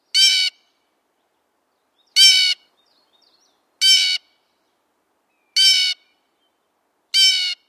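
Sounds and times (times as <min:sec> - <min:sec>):
blue jay calling: 0:00.1 - 0:00.7, 0:02.1 - 0:02.7, 0:03.8 - 0:04.3, 0:05.4 - 0:06.2, 0:07.1 - 0:07.6.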